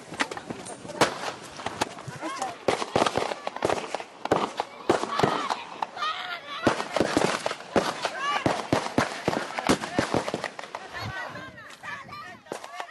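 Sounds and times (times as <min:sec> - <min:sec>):
gunshots fired into the air: 0:01.0 - 0:02.0, 0:02.6 - 0:05.8, 0:06.6 - 0:10.9
chaotic crowd shouting: 0:02.1 - 0:12.9.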